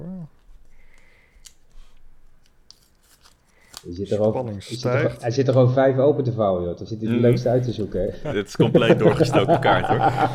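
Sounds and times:
scissors cutting paper: 2.4 - 4.3
speech: 3.8 - 10.3
laughter: 7.2 - 10.3.

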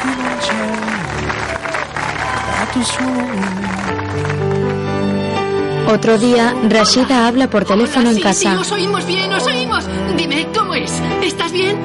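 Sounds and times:
applause from everyone as father and son hug: 0.0 - 5.2
speech: 2.8 - 4.5, 5.9 - 11.8.

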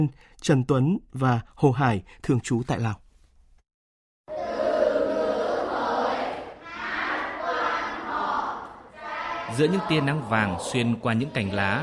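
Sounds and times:
speech: 0.0 - 3.0, 9.5 - 11.8
children reading aloud in unison in a classroom: 4.3 - 11.8.

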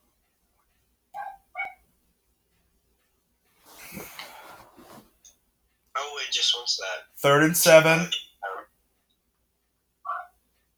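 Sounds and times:
dog barking at a televised football game: 1.2 - 1.8, 8.4 - 8.7, 10.0 - 10.4
speech: 6.3 - 8.2.

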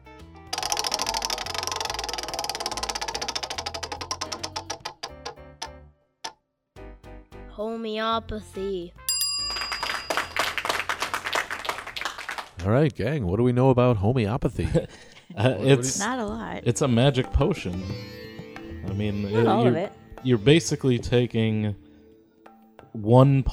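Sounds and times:
prize wheel spinning with pointer ticking: 0.5 - 5.4, 9.1 - 11.0
speech: 7.6 - 9.0, 12.6 - 18.2, 18.9 - 21.8, 23.0 - 23.5.

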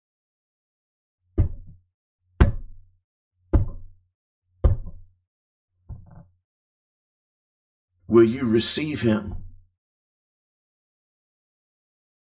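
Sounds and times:
firm knocking on a door: 1.4 - 1.8, 2.4 - 2.8, 3.6 - 3.9, 4.6 - 5.0
speech: 8.1 - 9.5.

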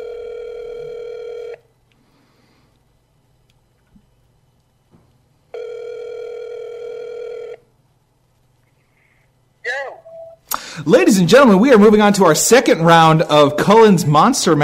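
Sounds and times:
telephone ringback tone of an unanswered call: 0.0 - 1.6, 5.5 - 7.6
speech: 10.8 - 14.6.

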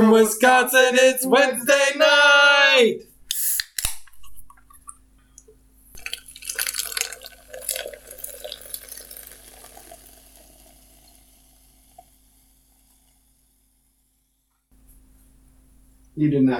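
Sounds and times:
speech: 0.1 - 3.1, 16.2 - 16.5
metallic can tab snapping open: 3.3 - 6.1
drink pouring and fizzing from a can with drips and bubbling: 6.0 - 14.1.

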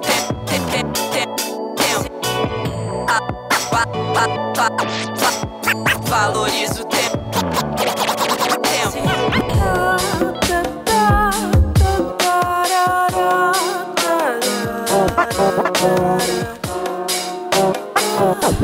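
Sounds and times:
loud hip-hop beat with bass and drums: 0.0 - 18.6
DJ turntable scratching: 3.1 - 11.2, 14.7 - 18.6.

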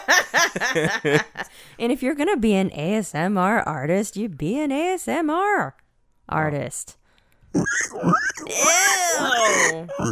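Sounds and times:
speech: 0.5 - 10.1
person imitating pig oinking with squeals and grunts: 7.6 - 10.1.

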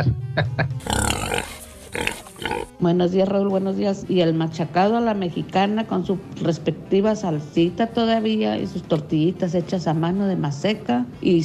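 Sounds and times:
speech: 0.0 - 1.0, 2.8 - 11.4
pig oinking and grunting with snorts and squeals: 0.8 - 2.7.

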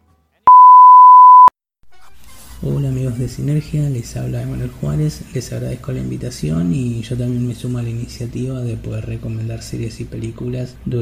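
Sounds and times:
answering machine beep: 0.5 - 1.5
speech: 2.6 - 10.9.

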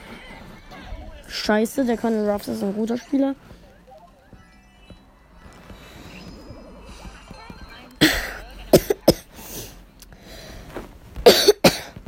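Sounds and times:
speech: 1.3 - 3.6
person having a coughing fit: 8.0 - 9.4, 11.2 - 12.0.

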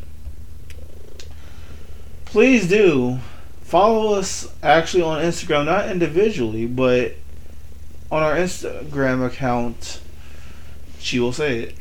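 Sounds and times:
cat purring: 0.7 - 1.4
speech: 2.3 - 7.2, 8.1 - 10.0, 11.0 - 11.7.

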